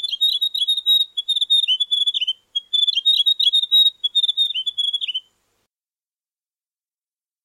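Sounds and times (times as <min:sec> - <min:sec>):
grey warbler song: 0:00.0 - 0:05.4.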